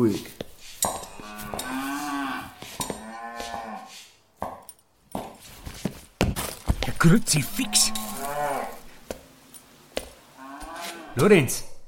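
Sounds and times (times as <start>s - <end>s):
speech: 0.0s - 0.4s, 7.0s - 8.0s, 11.2s - 11.7s
cattle mooing in a dim barn: 0.9s - 3.9s, 7.4s - 9.0s, 10.4s - 11.2s.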